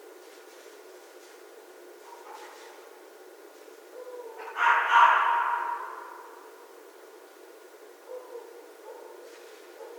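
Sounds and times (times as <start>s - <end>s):
red fox hoarse rasping scream: 4.0s - 6.3s.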